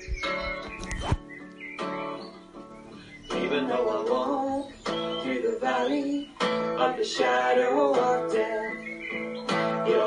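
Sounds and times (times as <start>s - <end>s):
birds chirping and singing outdoors in the trees: 0.0s - 10.0s
speech: 5.8s - 8.6s.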